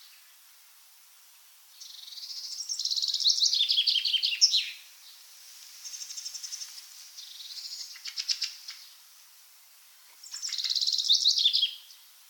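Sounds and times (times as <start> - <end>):
common chaffinch Fringilla coelebs singing: 1.8 - 5.2, 5.8 - 9.0, 10.2 - 12.1.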